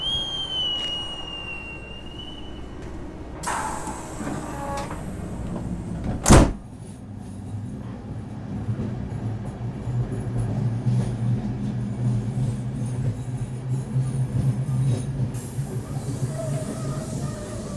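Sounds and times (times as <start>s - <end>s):
sleeper train door screech: 0.0s - 6.6s, 15.4s - 17.7s
double-decker sleeper train rumbling as it pulls away: 0.0s - 17.7s
sleeper train door shutting with loud thud: 0.5s - 6.8s.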